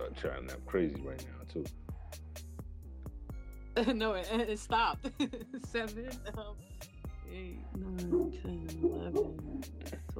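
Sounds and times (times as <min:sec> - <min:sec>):
speech: 0:00.1 - 0:02.2, 0:03.8 - 0:10.1
dog barking: 0:08.1 - 0:09.7.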